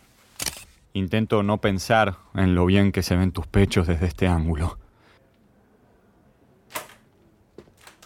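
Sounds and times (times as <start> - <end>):
camera shutter clicks while taking photos: 0.4 - 0.7
speech: 1.0 - 4.8.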